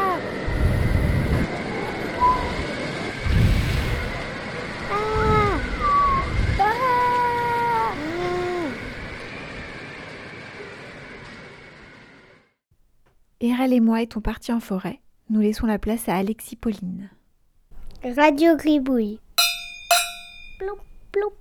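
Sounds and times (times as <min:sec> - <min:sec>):
gusty storm wind buffeting the microphone: 0:00.2 - 0:09.7
speech: 0:13.5 - 0:17.2, 0:18.0 - 0:19.2, 0:20.6 - 0:21.3.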